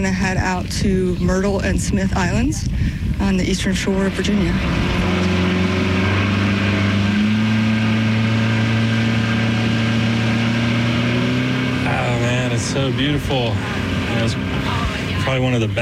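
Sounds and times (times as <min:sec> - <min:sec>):
speech: 0:00.0 - 0:05.4, 0:12.7 - 0:15.8
motorboat engine droning off the eastern shore of Virginia: 0:00.0 - 0:15.8.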